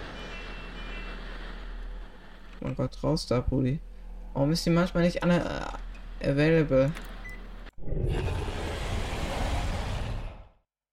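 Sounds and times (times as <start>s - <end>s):
speech: 2.6s - 7.1s
tiger roaring: 8.0s - 10.5s.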